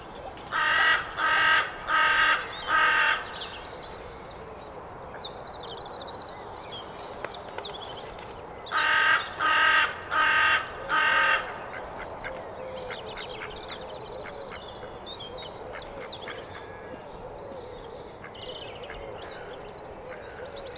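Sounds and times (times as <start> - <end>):
carrion crow Corvus corone cawing: 0.5 - 3.5, 8.7 - 11.7.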